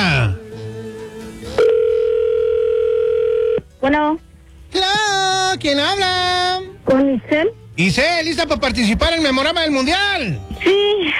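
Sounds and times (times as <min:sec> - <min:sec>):
ringback tone on an outgoing telephone call: 0:01.6 - 0:03.6
speech: 0:03.8 - 0:06.3, 0:06.9 - 0:11.1.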